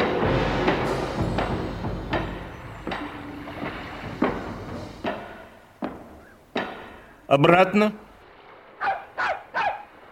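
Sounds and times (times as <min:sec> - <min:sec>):
faint hiss: 0:00.0 - 0:08.8
speech: 0:07.3 - 0:08.0
dog barking: 0:08.8 - 0:09.9.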